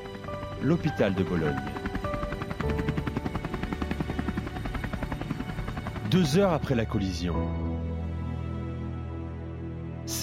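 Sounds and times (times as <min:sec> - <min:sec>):
landed helicopter rotor thumping on a race track: 0:00.0 - 0:06.4
helicopter engine roar: 0:00.0 - 0:09.6
speech: 0:00.6 - 0:02.0, 0:06.1 - 0:07.6.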